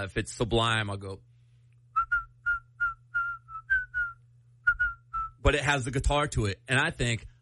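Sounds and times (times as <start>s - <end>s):
speech: 0.0s - 1.3s, 5.4s - 7.3s
person whistling a short bouncy song melody: 1.9s - 5.4s.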